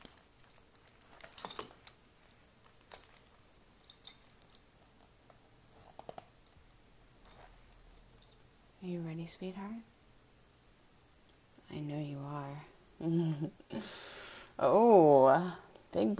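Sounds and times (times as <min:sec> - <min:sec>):
metal belt buckle jingling and clicking as it is unfastened: 0:00.0 - 0:04.8, 0:05.7 - 0:08.4
speech: 0:08.8 - 0:09.9, 0:11.9 - 0:16.1.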